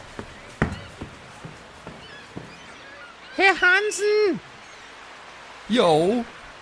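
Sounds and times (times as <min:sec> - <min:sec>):
little girl's footsteps on a hollow boat deck: 0:00.0 - 0:03.0
speech: 0:03.4 - 0:04.5, 0:05.7 - 0:06.4.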